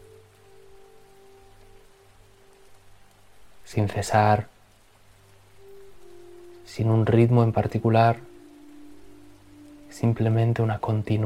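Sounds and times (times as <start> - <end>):
faint low hum: 0.0 - 11.2
water rushing steadily: 0.0 - 11.2
speech: 3.7 - 4.5, 6.8 - 8.3, 10.0 - 11.2.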